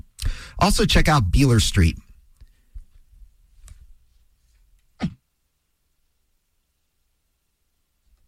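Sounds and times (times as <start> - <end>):
speech: 0.6 - 2.0
radio presenter coughing: 5.0 - 5.2.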